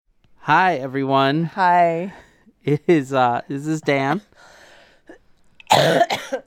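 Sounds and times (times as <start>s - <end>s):
speech: 0.5s - 4.6s, 5.7s - 6.4s
sick person coughing harshly: 5.7s - 6.4s.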